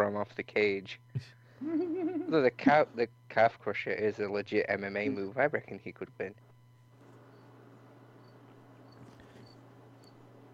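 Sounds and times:
steady low hum: 0.0s - 10.5s
speech: 0.2s - 6.5s
laughter: 1.6s - 3.0s
crickets chirping outdoors at night: 8.2s - 10.2s.

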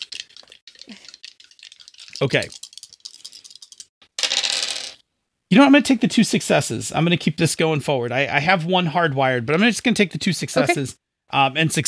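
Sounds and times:
three dice rattling and clattering as they are rolled: 0.0s - 5.0s
speech: 2.2s - 2.6s, 5.5s - 11.8s.

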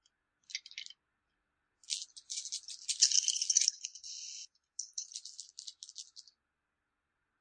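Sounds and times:
dice rattling in a hand or cup: 0.5s - 0.9s, 1.8s - 6.3s.

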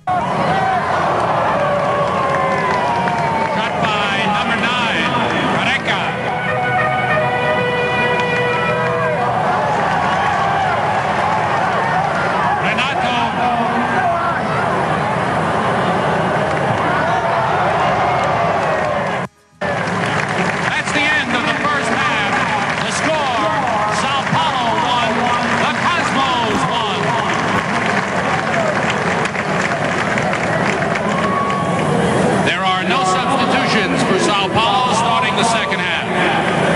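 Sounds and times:
dense roaring stadium crowd with sustained tonal calls and cheers: 0.0s - 36.7s
booming stadium loudspeaker voice calling player names at a match in New York: 3.3s - 9.5s, 12.4s - 15.2s, 19.6s - 28.0s, 32.4s - 36.7s.

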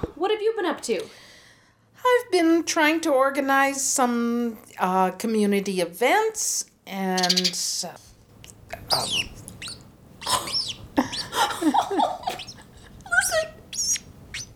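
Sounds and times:
speech: 0.2s - 1.3s, 2.0s - 8.1s, 8.7s - 9.4s
small female pet bird chirping and twittering on a person's collarbone: 7.2s - 7.8s, 8.8s - 11.4s, 12.2s - 14.5s.

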